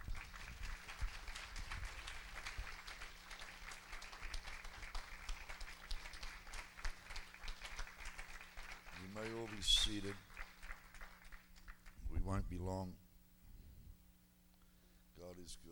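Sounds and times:
audience applauding: 0.0 - 12.0
low steady hum: 0.0 - 15.6
speech: 9.2 - 10.3, 12.3 - 13.0.

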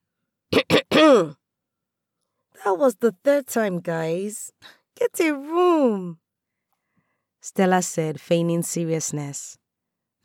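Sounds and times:
person clearing throat loudly: 0.6 - 1.4
speech: 2.6 - 6.2, 7.4 - 9.6.

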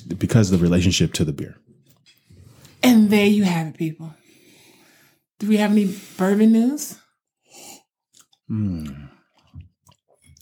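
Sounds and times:
speech: 0.1 - 1.7, 2.9 - 4.2, 5.4 - 7.0, 8.5 - 9.2
slurping sip of whiskey: 7.5 - 9.6
small wet mouth clicks: 8.1 - 10.4
throaty satisfied vocal exhale: 8.5 - 9.2.

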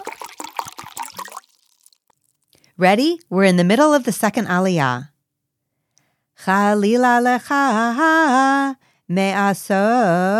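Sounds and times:
water poured into a glass: 0.0 - 2.6
speech: 2.8 - 5.1, 6.4 - 10.3.

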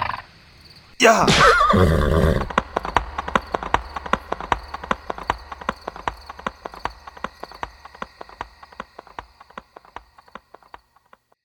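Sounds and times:
horse whinnying: 1.0 - 2.5
speech: 1.0 - 2.6
horse hooves clip-clopping: 1.6 - 11.3.

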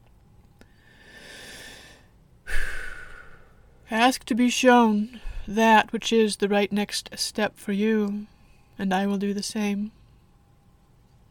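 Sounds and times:
deep breathing during a guided meditation: 0.6 - 3.8, 5.2 - 5.5
speech: 3.9 - 10.0.

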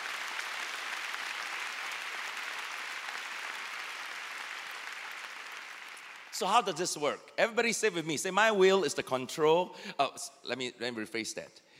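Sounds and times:
audience clapping: 0.0 - 7.0
speech: 6.4 - 11.7.

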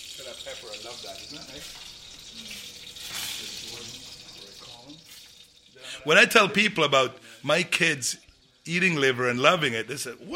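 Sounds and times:
speech: 0.0 - 4.2, 5.8 - 10.3
scotch bonnet peppers sizzling in a hot pan in a kitchen: 0.0 - 8.9.

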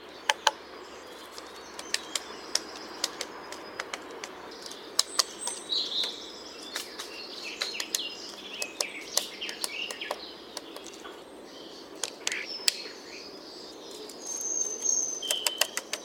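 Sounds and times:
faint bird chirps: 0.0 - 16.0
soft outdoor hiss: 0.0 - 16.0
woodpecker tapping wood while foraging for insects: 0.2 - 0.6, 1.3 - 11.2, 12.0 - 12.8, 15.2 - 16.0.

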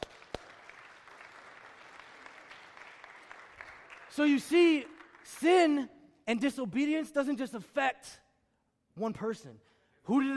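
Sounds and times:
crowd at a sermon applauding: 0.0 - 5.4
speech: 4.2 - 8.2, 9.0 - 10.3.

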